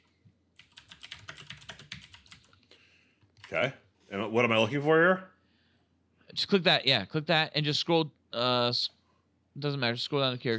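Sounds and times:
typing on a computer keyboard: 0.6s - 2.6s
speech: 3.5s - 5.3s, 6.4s - 9.0s, 9.6s - 10.5s.

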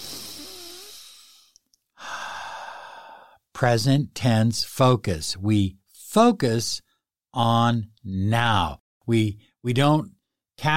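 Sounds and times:
long deep breath in and exhale: 0.0s - 3.4s
speech: 3.6s - 6.8s, 7.4s - 10.7s.

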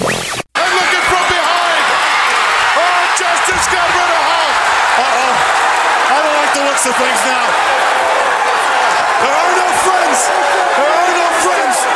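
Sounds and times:
wrestling commentators speaking: 0.6s - 7.8s, 8.8s - 11.9s
big wrestling arena crowd roaring and cheering: 0.6s - 11.9s
speech: 6.8s - 7.5s.

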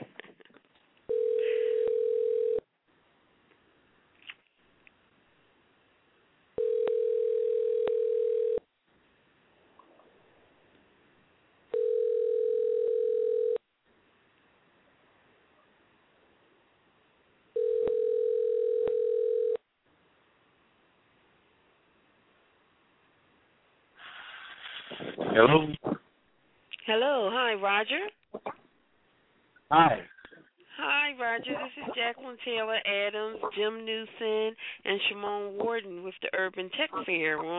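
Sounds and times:
phone line ringback tones while a call connects: 1.1s - 2.6s, 6.6s - 8.6s, 11.7s - 13.6s, 17.6s - 19.6s
speech: 25.2s - 26.0s, 26.9s - 28.2s, 29.7s - 30.1s, 30.8s - 37.5s.

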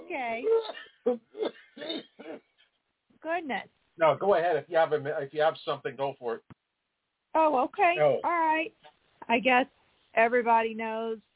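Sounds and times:
speech: 0.1s - 1.3s, 3.4s - 6.5s, 7.4s - 11.3s
harsh coughs: 0.5s - 2.6s.

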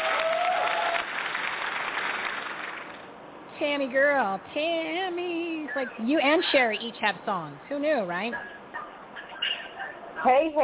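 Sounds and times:
crowd clapping: 0.0s - 3.0s
speech: 3.6s - 8.6s, 10.2s - 10.6s.

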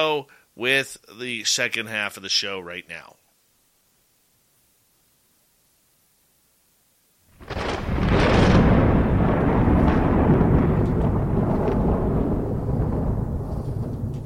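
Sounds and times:
speech: 0.0s - 3.2s
deep heavy rumble of thunder: 7.4s - 14.2s.

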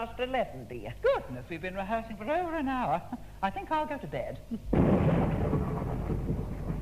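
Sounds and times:
speech: 0.0s - 5.4s
thunder rumbling: 4.8s - 6.8s.

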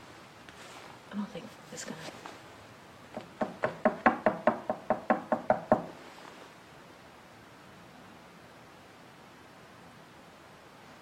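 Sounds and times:
speech: 1.1s - 2.3s
sharp knocks on a hard surface: 3.1s - 6.0s.

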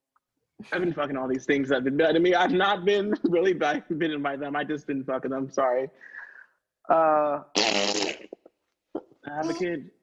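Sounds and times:
speech: 0.6s - 6.2s, 6.9s - 8.4s, 9.2s - 10.0s
loud buzzy fart: 7.5s - 8.5s.

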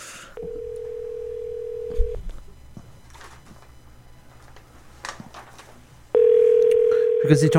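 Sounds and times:
phone line tone: 0.4s - 2.4s, 6.2s - 7.5s
speech: 7.3s - 7.5s.

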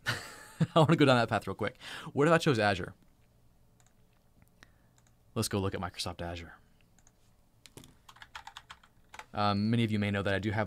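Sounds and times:
speech: 0.6s - 3.0s, 5.4s - 6.6s, 9.3s - 10.6s
typing on a computer keyboard: 7.0s - 9.3s.

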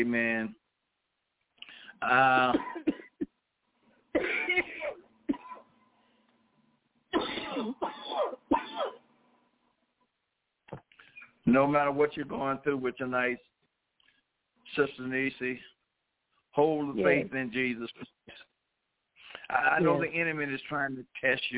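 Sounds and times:
speech: 0.0s - 0.6s, 2.0s - 3.0s, 11.5s - 13.5s, 14.7s - 15.7s, 16.6s - 18.5s, 19.5s - 21.5s
harsh phlegmy coughs: 2.3s - 3.3s, 4.2s - 5.6s, 7.2s - 9.0s, 17.0s - 17.2s, 19.8s - 20.1s.

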